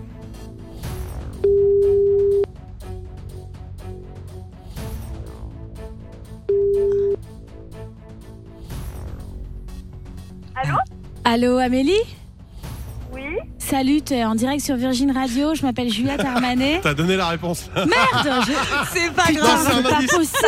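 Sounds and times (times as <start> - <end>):
music: 0.0 - 20.4
telephone ringback tone while placing a call: 1.4 - 2.4, 6.5 - 7.2
speech: 11.3 - 12.2, 13.7 - 20.4
laughter: 15.4 - 20.4.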